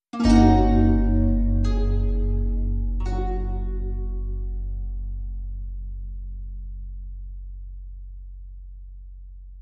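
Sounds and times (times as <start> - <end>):
harp sound logo: 0.2 - 5.6.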